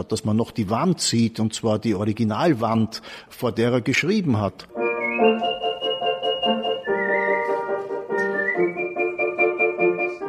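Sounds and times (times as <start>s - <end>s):
speech: 0.0s - 5.6s
steady instrumental accompaniment: 4.7s - 10.2s
person whistling an aria at a book presentation: 4.8s - 10.2s.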